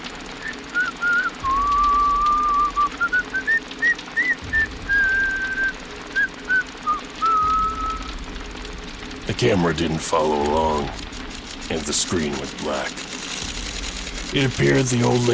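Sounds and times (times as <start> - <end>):
low steady rumble: 0.0 - 15.3
person whistling a slow wandering tune: 0.4 - 8.1
speech: 9.4 - 11.1, 11.7 - 13.2, 14.3 - 15.3.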